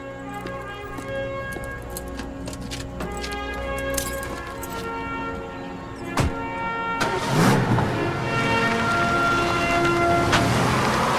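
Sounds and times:
light jangle of keys: 0.3 - 5.0
car engine starting, revving and idling as it pulls away: 7.0 - 11.1.

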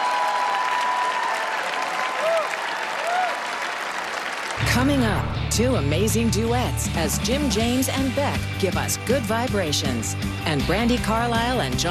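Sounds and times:
large crowd applauding: 0.0 - 4.9
speech: 4.8 - 11.8.

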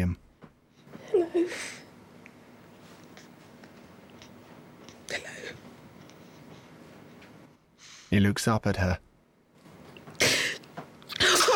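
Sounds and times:
speech: 8.1 - 9.1
person sneezing: 10.2 - 11.5.

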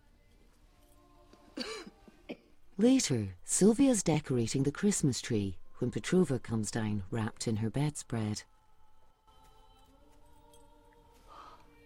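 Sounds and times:
woman at a table giving a short throaty cough: 1.6 - 2.6
speech: 2.8 - 8.6.

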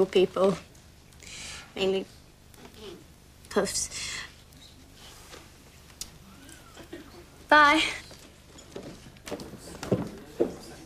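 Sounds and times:
speech: 0.0 - 2.2, 3.6 - 4.3, 7.5 - 8.0, 8.8 - 9.6
soft heel footsteps walking away: 8.1 - 10.8.

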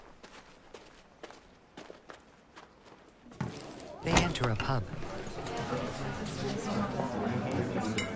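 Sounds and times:
footsteps crossing a snow-covered street on a freezing day: 0.0 - 4.0
speech: 4.4 - 8.0.

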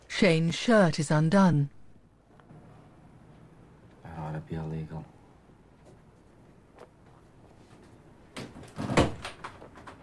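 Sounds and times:
speech: 0.2 - 1.8
door swinging shut with a solid thud: 8.4 - 10.0.

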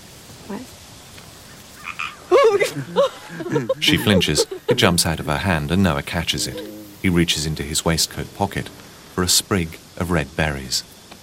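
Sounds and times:
speech: 0.5 - 0.8, 3.7 - 11.0
small frog croaking: 1.7 - 2.3, 3.8 - 10.0
laughter: 2.3 - 7.3.

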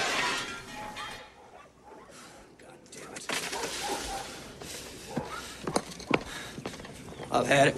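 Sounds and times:
golf ball smashing a large glass window pane of a house: 0.0 - 1.2
noise: 0.0 - 7.7.

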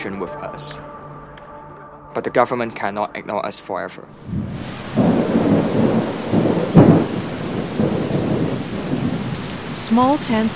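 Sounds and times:
speech: 0.0 - 1.0, 2.1 - 5.8, 9.8 - 10.5
deep rolls of thunder with a sharp crack: 4.2 - 10.5
heavy rain: 4.2 - 10.5.

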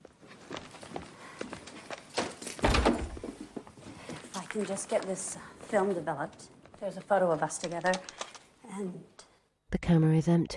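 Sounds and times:
cottage door opening: 2.1 - 3.5
speech: 4.6 - 8.2, 8.8 - 9.1, 9.9 - 10.5.

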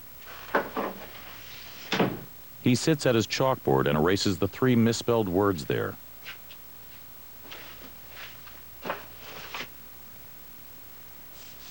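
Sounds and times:
door being pushed shut: 1.9 - 2.3
speech: 2.6 - 6.0.

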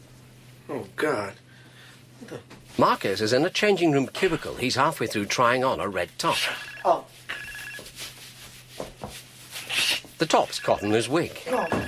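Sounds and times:
speech: 0.7 - 1.4, 2.2 - 7.2, 10.2 - 11.8
cell phone ringing inside a handbag: 6.4 - 7.9, 10.4 - 11.8.

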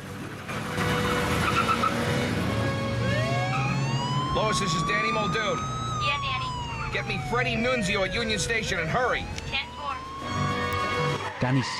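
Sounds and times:
police car engine roaring as it speeds off: 0.0 - 11.7
tire squeal from rear wheels spinning on the road: 0.6 - 3.7, 10.3 - 11.7
speech: 4.4 - 6.4, 7.0 - 9.7, 11.4 - 11.7.

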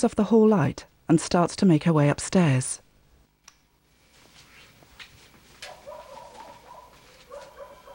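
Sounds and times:
speech: 0.0 - 2.8
quiet hissy background: 0.1 - 7.9
faint dogs barking and yelping: 5.6 - 7.9.

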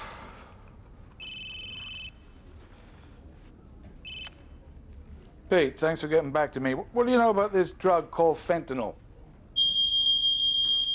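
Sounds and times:
faint low noise: 0.0 - 10.9
smoke alarm beeping: 1.2 - 2.2, 4.0 - 4.4, 9.6 - 10.9
speech: 5.5 - 9.0.

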